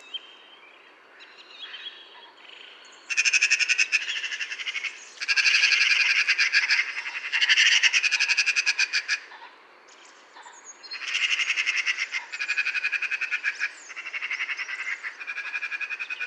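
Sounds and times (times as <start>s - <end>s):
Eurasian magpie Pica pica chattering: 3.1s - 9.2s, 11.0s - 16.2s.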